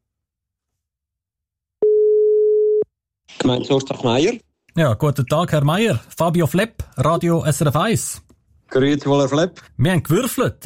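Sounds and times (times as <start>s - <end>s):
telephone ringback tone while placing a call: 1.8s - 2.9s
speech: 3.5s - 10.6s.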